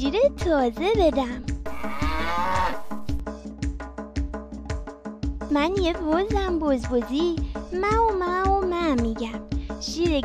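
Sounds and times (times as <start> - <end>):
speech: 0.0 - 1.5, 5.5 - 10.2
cow mooing: 1.7 - 3.2.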